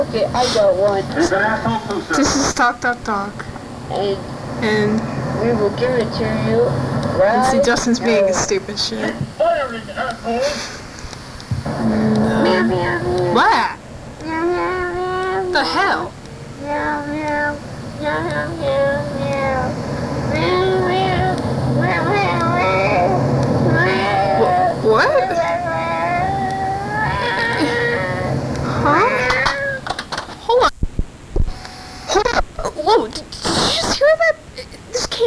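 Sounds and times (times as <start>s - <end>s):
speech: 0.0s - 10.8s, 11.8s - 13.8s, 15.6s - 20.7s
laughter: 0.0s - 30.8s
scattered clicks: 0.0s - 35.2s
novelty song built from meowing cat sounds: 14.2s - 29.9s.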